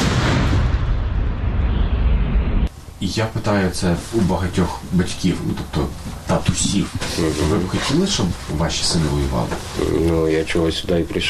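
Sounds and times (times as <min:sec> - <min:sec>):
heavy artillery shot booming: 0:00.0 - 0:02.7
speech: 0:03.0 - 0:11.2.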